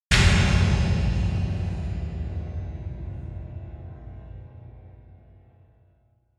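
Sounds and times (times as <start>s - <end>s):
high impact: 0.1s - 5.5s.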